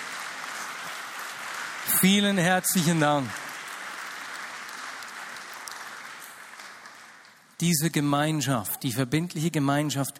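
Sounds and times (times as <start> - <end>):
audience applauding: 0.0 - 7.6
speech: 1.9 - 3.4, 7.6 - 10.1.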